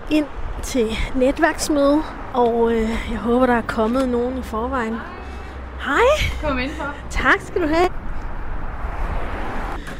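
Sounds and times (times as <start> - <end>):
heavy road traffic engine and tyre noise: 0.0 - 9.9
speech: 0.1 - 5.2, 5.8 - 7.9.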